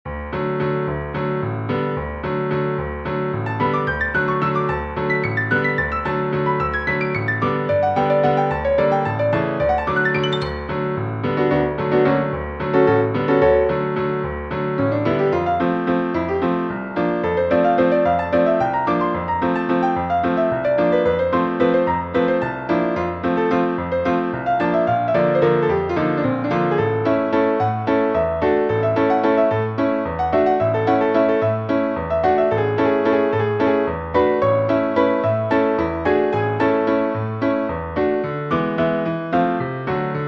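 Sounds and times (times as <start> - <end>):
solo piano: 0.0 - 40.2.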